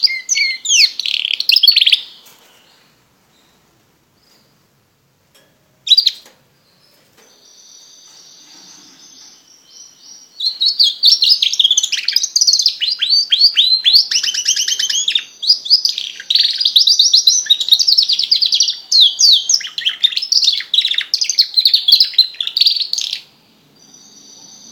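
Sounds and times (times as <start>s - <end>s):
Border canary singing: 0.0s - 4.6s, 5.8s - 24.7s.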